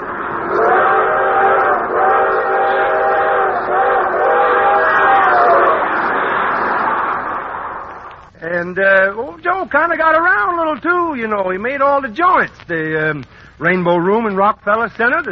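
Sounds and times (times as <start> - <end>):
steam train rushing and rumbling through the countryside: 0.0 - 8.1
steam train whistle blowing a long chord-like note: 0.3 - 6.5
speech: 9.6 - 15.2.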